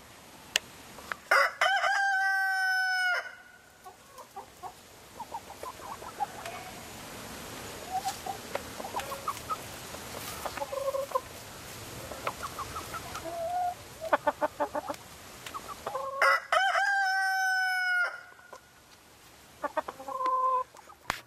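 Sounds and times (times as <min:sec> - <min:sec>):
rooster crowing: 0:01.3 - 0:03.6, 0:16.2 - 0:18.4
hens clucking and chattering: 0:03.8 - 0:07.0, 0:07.6 - 0:16.4, 0:19.6 - 0:21.2.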